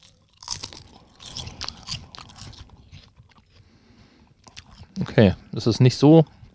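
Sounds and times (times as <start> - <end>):
crunching and chewing thin crispy seaweed snack: 0.0 - 3.4
speech: 5.0 - 6.4.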